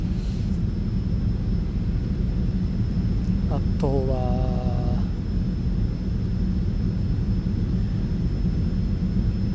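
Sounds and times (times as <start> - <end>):
airplane cabin engine drone during a long flight to Dubai: 0.0 - 9.5
speech: 3.5 - 4.8.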